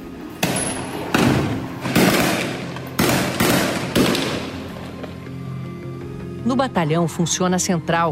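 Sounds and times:
loud booming gunshots: 0.4 - 4.6
speech: 6.5 - 8.0.

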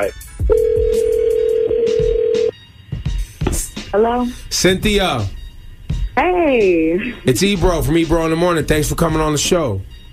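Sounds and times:
speech: 0.0 - 0.3, 3.9 - 5.4, 6.2 - 9.9
electronic ringback tone of an outgoing phone call: 0.4 - 2.6.

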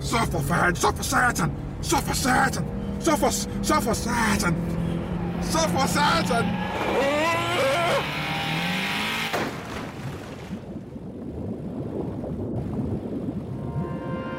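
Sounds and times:
speech: 0.1 - 4.8, 5.4 - 7.5
car tire skid squealing with brakes not working: 3.6 - 9.6
car crash: 6.5 - 10.2
rumbling crackling noise: 9.5 - 14.2.

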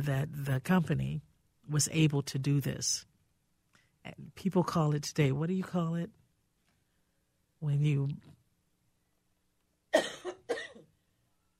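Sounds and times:
speech: 0.0 - 3.1, 4.0 - 6.2, 7.6 - 8.4
person coughing harshly: 9.9 - 11.0.

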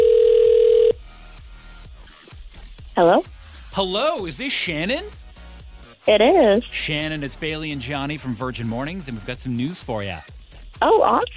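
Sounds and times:
electronic telephone ringback tone: 0.0 - 1.0
speech: 3.0 - 5.2, 6.0 - 11.3.

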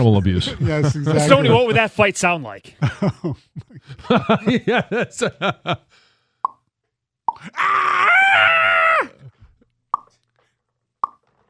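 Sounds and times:
laughter: 0.0 - 5.9
speech: 0.0 - 6.0
loud sustained strained human scream: 7.4 - 9.3.

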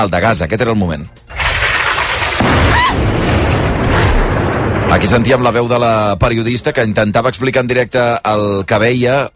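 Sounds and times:
speech: 0.0 - 1.3, 4.9 - 9.3
rocket strike explosion on an apartment tower: 1.3 - 6.3.

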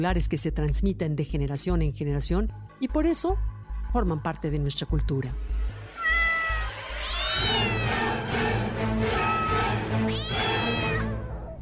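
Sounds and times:
speech: 0.0 - 5.8
cat meowing loudly: 6.0 - 8.1, 9.2 - 11.5.

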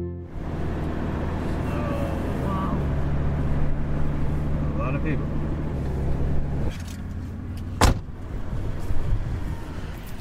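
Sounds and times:
car engine idling on a school parking lot in Tennessee: 0.2 - 10.1
car door thump: 7.7 - 8.1.

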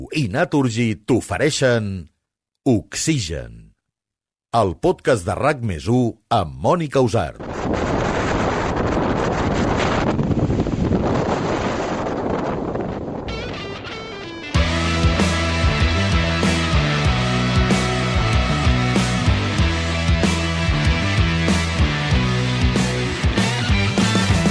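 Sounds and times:
speech: 0.0 - 3.7, 4.5 - 8.0
roaring blizzard wind blowing snow: 7.3 - 14.6
bright rhythmic music track: 14.6 - 24.4.

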